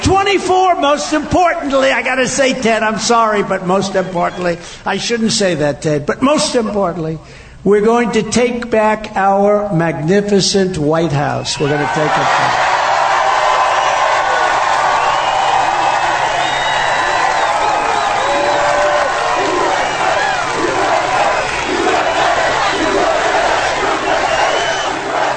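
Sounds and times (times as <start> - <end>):
speech: 0.1 - 12.7
rally crowd cheers and yells: 11.6 - 25.3
large rally crowd chanting: 17.1 - 25.3.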